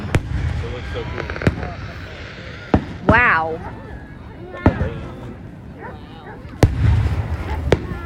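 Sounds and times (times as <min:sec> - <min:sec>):
Independence Day fireworks bangs: 0:00.0 - 0:05.5, 0:06.5 - 0:08.0
faint chatter: 0:00.0 - 0:08.0
low crackling wash of fireworks: 0:00.0 - 0:08.0
speech: 0:01.0 - 0:01.3.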